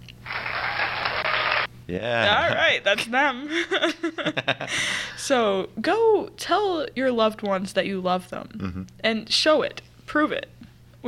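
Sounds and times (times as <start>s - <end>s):
whole town's crowd cheering and clapping: 0.2s - 1.7s
speech: 1.9s - 11.0s
laughter: 2.2s - 5.0s.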